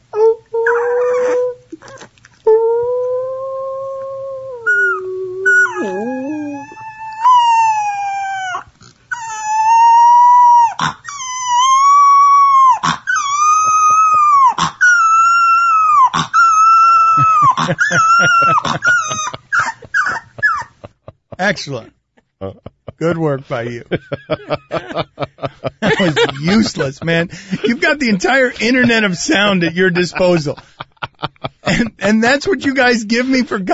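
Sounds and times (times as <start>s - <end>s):
three-week-old boxer puppy learning to howl: 0.2s - 20.8s
laughter: 17.2s - 21.8s, 22.4s - 32.8s
speech: 21.6s - 21.9s, 23.0s - 24.7s, 26.0s - 30.7s, 31.7s - 33.7s.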